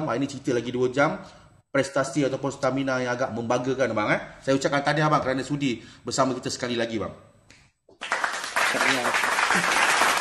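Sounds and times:
speech: 0:00.0 - 0:07.3, 0:08.7 - 0:09.8
hands clapping: 0:07.5 - 0:10.2.

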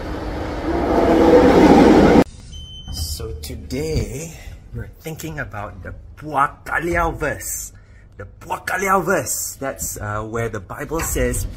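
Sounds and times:
train arriving at station: 0:00.0 - 0:02.3
speech: 0:03.7 - 0:11.5.

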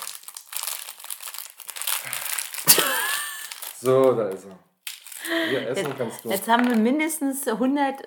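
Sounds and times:
plastic packaging crinkling as it is opened: 0:00.0 - 0:06.9
speech: 0:03.8 - 0:04.7, 0:05.3 - 0:08.0.

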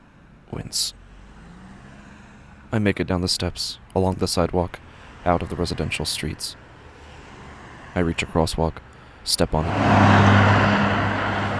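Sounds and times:
speech: 0:00.6 - 0:01.0, 0:02.7 - 0:06.6, 0:07.9 - 0:10.6
car rushing past on a street: 0:01.1 - 0:02.7, 0:09.6 - 0:11.5.

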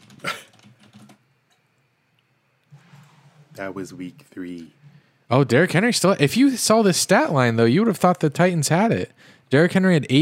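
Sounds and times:
typing on a computer keyboard: 0:00.0 - 0:01.2
speech: 0:03.6 - 0:10.2.

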